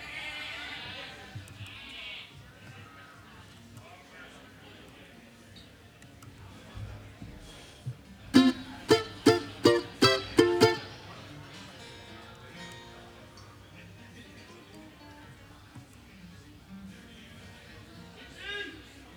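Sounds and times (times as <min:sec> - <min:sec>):
low crowd murmur and chatter: 0:06.6 - 0:19.1.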